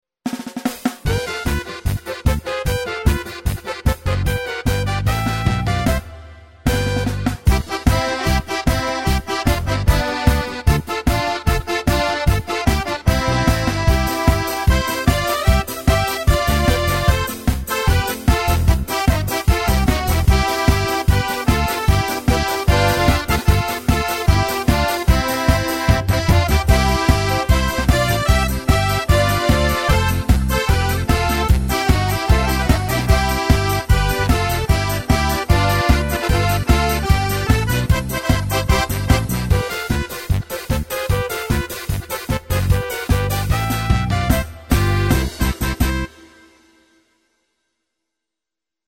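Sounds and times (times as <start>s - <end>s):
steir polka music: 0.3s - 46.9s.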